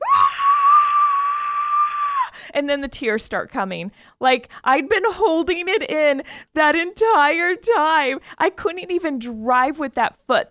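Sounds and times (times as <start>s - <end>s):
person screaming in a car with the door shut: 0.0s - 2.3s
speech: 2.6s - 10.4s.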